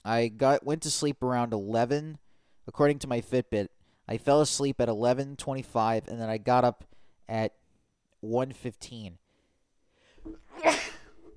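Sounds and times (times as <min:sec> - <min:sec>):
speech: 0:00.0 - 0:07.6, 0:08.2 - 0:09.2
person sneezing: 0:10.4 - 0:11.2.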